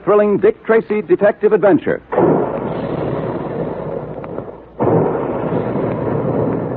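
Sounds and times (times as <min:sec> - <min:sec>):
speech: 0:00.1 - 0:02.4
big cereal puffing guns firing at a cereal plant: 0:02.1 - 0:06.7
steady rushing roar: 0:02.2 - 0:06.7.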